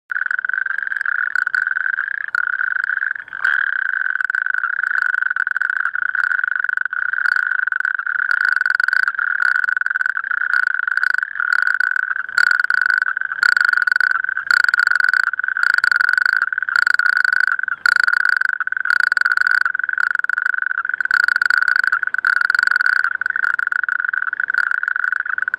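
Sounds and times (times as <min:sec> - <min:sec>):
natterjack toad calling: 0:00.1 - 0:25.5.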